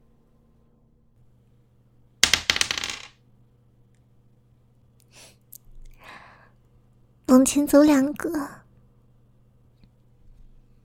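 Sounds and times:
dice rolled across a hard surface during a game: 2.2 - 3.2
speech: 7.4 - 8.6.

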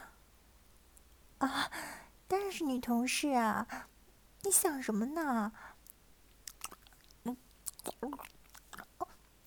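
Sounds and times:
speech: 1.4 - 5.8, 7.2 - 8.4
person eating ice cream with wet chewing and biting: 6.3 - 9.2.

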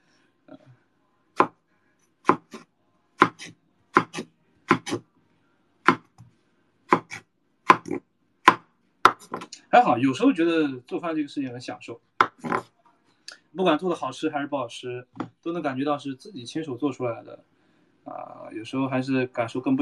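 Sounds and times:
sharp knife chopping food while cooking dinner at home: 2.3 - 2.6, 3.2 - 5.0, 5.9 - 6.2, 6.9 - 9.5, 12.2 - 12.6
speech: 9.7 - 12.1, 13.6 - 17.5, 18.1 - 19.8.

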